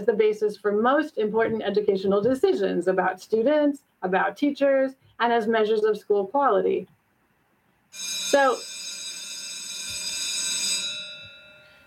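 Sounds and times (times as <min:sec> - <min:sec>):
speech: 0:00.0 - 0:07.0, 0:07.9 - 0:08.8
electric school bell ringing: 0:08.0 - 0:11.8.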